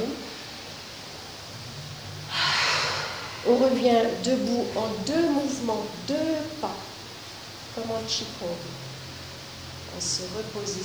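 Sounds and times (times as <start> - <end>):
person breathing during a guided stretching exercise: 2.3 - 4.4
speech: 3.5 - 6.9, 7.8 - 8.9, 10.0 - 10.8.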